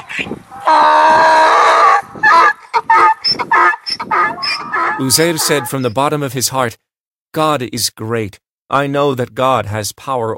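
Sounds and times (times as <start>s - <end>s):
donkey braying loudly while standing up: 0.0s - 6.1s
speech: 0.2s - 1.2s, 5.0s - 6.8s, 7.4s - 10.3s.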